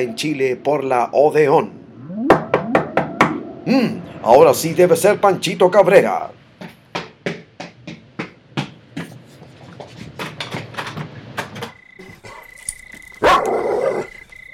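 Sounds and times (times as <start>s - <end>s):
speech: 0.0s - 1.8s, 3.7s - 6.4s
steady high tone: 0.0s - 4.9s
dog barking: 13.2s - 14.2s.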